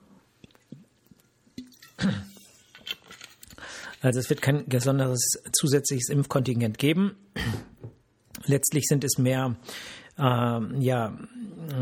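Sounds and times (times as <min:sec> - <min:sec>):
person sipping a drink: 0:00.2 - 0:04.0
speech: 0:04.0 - 0:07.6, 0:08.5 - 0:11.8.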